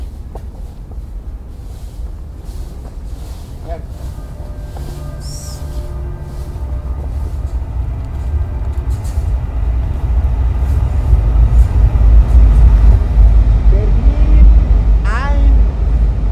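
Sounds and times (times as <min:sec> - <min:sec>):
Berlin S-Bahn commuter train rumbling: 0:00.0 - 0:16.3.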